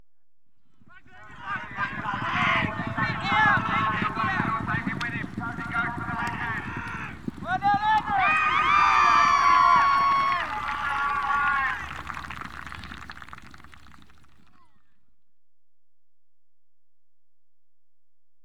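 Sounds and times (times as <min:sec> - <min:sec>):
polo goal scored at an equestrian event: 0:01.1 - 0:13.7.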